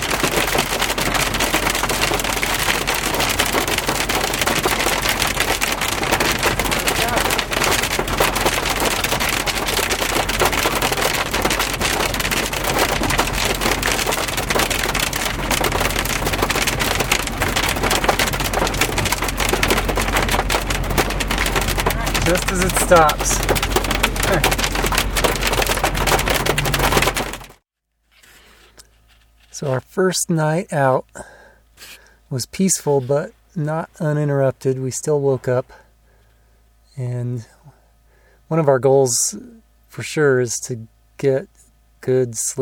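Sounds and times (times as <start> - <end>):
hail pelting down on a surface: 0.0 - 27.6
speech: 22.9 - 23.5, 29.6 - 31.3, 32.3 - 35.8, 37.0 - 37.5, 38.5 - 42.6.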